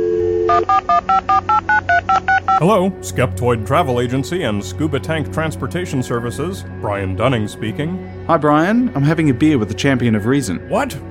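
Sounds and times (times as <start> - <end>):
mobile phone dialing tones: 0.0 - 2.6
speech: 2.6 - 11.1.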